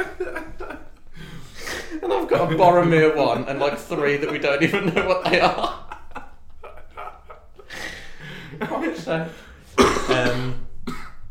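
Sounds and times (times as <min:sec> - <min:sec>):
laughter: 0:00.0 - 0:10.5
speech: 0:02.1 - 0:05.8, 0:09.0 - 0:09.4, 0:10.1 - 0:10.6
harsh coughs: 0:09.8 - 0:11.2
throat clearing: 0:09.8 - 0:11.2.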